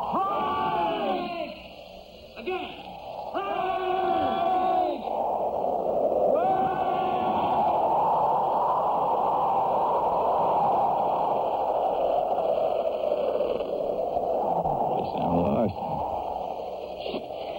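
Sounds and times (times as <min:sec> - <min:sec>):
several men shouting in unison: 0:00.0 - 0:01.6, 0:02.4 - 0:05.1, 0:06.3 - 0:07.8
strong wind roaring: 0:00.0 - 0:17.5.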